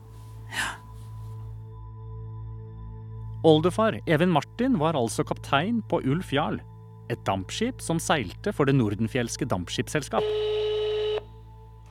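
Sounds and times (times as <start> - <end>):
speech: 3.4 - 10.5
telephone line tone beep: 10.2 - 11.3.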